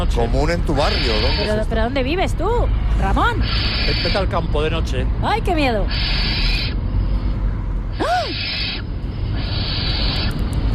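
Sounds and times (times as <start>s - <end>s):
speech: 0.1s - 6.5s
barn owl call at night: 0.8s - 1.6s, 3.3s - 4.3s, 5.8s - 6.8s, 7.9s - 10.6s.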